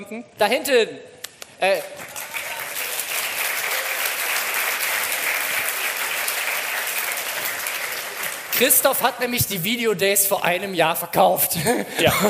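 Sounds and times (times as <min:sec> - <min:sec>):
speech: 0:00.0 - 0:02.1, 0:08.6 - 0:12.2
large live audience applauding: 0:01.6 - 0:09.4
laughter: 0:11.5 - 0:12.2.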